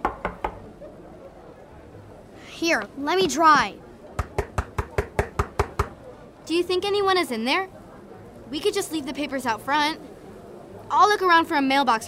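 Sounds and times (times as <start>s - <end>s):
knocking on a wooden club door: 0.0s - 0.6s, 4.2s - 5.9s
speech: 2.6s - 3.8s, 6.5s - 7.8s, 8.5s - 10.1s, 10.9s - 12.0s.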